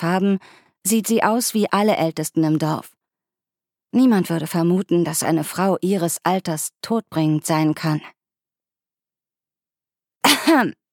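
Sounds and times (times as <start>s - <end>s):
speech: 0.0s - 3.0s, 3.9s - 8.2s, 10.2s - 10.8s
woman clearing throat: 10.2s - 10.8s.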